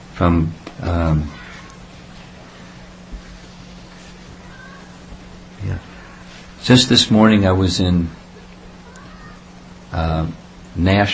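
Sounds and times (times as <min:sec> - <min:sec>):
faint steady low hum: 0:00.0 - 0:11.1
speech: 0:00.2 - 0:01.4, 0:06.6 - 0:08.2, 0:09.9 - 0:11.1
cat meowing: 0:01.3 - 0:01.8, 0:04.4 - 0:05.1, 0:08.8 - 0:09.5.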